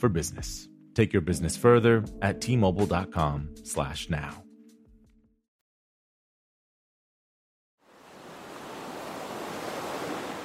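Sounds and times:
speech: 0.0 - 4.4
music: 0.0 - 5.5
ocean surf waves: 7.8 - 10.4.

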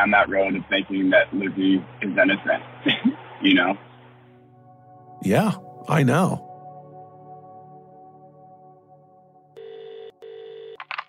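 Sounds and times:
speech: 0.0 - 3.9, 5.2 - 6.5
buzzy phone ringback tone on an outgoing call: 9.6 - 10.8.

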